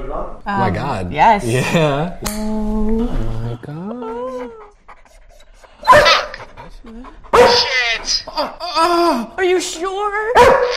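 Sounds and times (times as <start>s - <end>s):
speech: 0.3s - 4.6s, 6.8s - 10.7s
dog barking: 5.8s - 6.5s, 7.3s - 8.3s, 10.4s - 10.7s.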